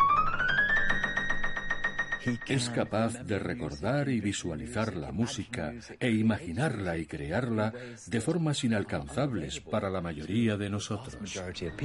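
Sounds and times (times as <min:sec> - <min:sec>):
washing machine drum spinning up with humming motor whine: 0:00.1 - 0:02.9
speech: 0:02.5 - 0:11.8.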